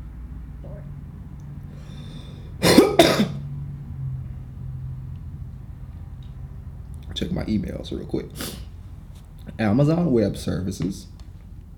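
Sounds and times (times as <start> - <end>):
low steady hum: 0.0 - 11.7
person coughing: 2.6 - 3.4
speech: 7.2 - 8.7, 9.5 - 11.1.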